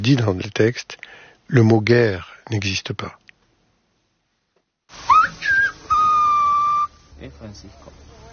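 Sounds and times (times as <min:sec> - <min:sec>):
speech: 0:00.0 - 0:03.2, 0:07.2 - 0:08.0
loud clear whistle in a whistled language: 0:05.1 - 0:07.0
faint murmurs: 0:07.2 - 0:08.3.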